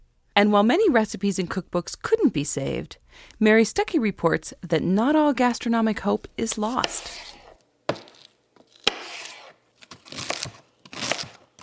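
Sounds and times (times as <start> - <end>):
speech: 0.4 - 7.4
knife chopping celery on a cutting board: 5.0 - 7.5.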